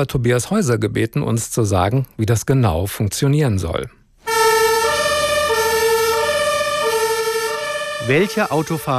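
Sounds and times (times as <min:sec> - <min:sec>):
speech: 0:00.0 - 0:04.0, 0:08.0 - 0:08.9
emergency vehicle siren wailing: 0:04.2 - 0:08.9.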